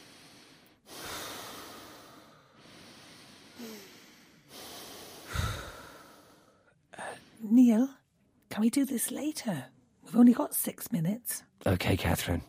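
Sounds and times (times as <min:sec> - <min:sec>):
slow deep breathing: 0:00.0 - 0:07.5
speech: 0:07.5 - 0:08.0, 0:08.6 - 0:12.4.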